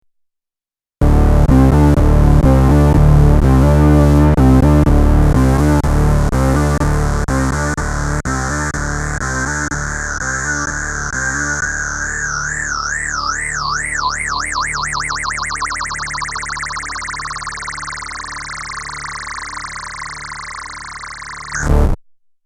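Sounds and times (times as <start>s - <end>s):
mono bass synth: 1.0s - 22.0s.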